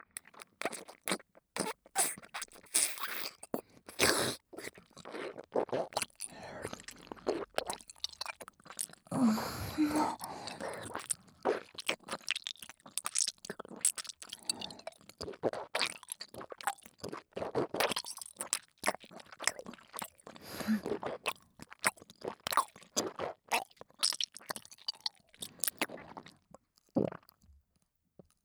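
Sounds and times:
crunchy chewing of food: 0:00.0 - 0:09.1, 0:10.0 - 0:27.4.

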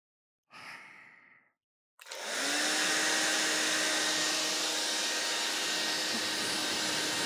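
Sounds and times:
soft breathy exhale: 0:00.5 - 0:01.6
hair dryer blowing on hair: 0:02.0 - 0:07.2.

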